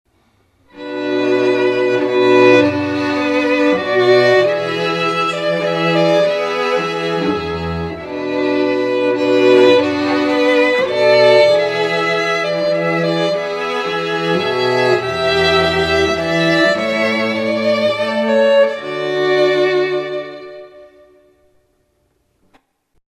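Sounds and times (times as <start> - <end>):
strings: 0.7 - 21.6.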